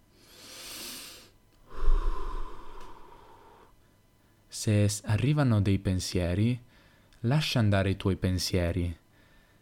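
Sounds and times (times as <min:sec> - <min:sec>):
slow meditation breathing through the nose: 0:00.2 - 0:04.4, 0:09.1 - 0:09.6
speech: 0:04.6 - 0:09.0.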